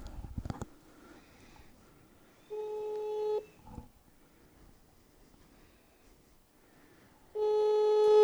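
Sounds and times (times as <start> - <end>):
phone ringback tone for an international call to Mexico: 2.5 - 3.5.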